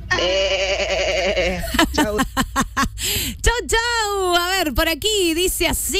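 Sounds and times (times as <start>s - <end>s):
sheep bleating calling for food: 0.1s - 1.6s
speech: 0.2s - 0.5s, 1.6s - 5.9s.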